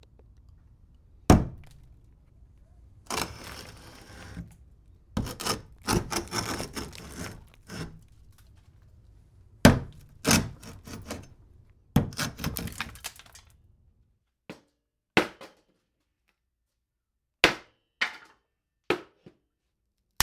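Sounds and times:
wood breaking: 0.0 - 13.6
wood banging: 0.1 - 13.5.

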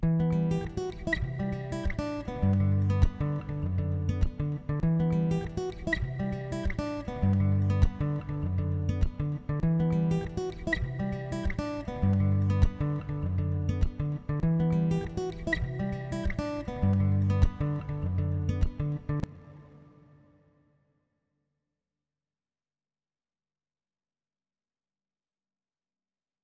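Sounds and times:
beautiful guitar playing: 0.0 - 20.4.

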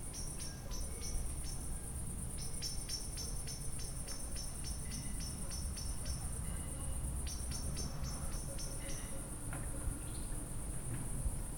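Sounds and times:
cricket giving a continuous high-pitched trill in the evening: 0.0 - 11.5.

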